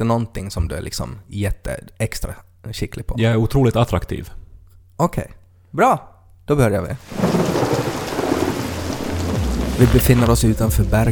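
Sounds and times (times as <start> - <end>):
speech: 0.0 - 4.4, 5.0 - 7.5, 9.8 - 11.1
steady rain: 7.0 - 10.9
low thunder rumbling: 7.0 - 11.1.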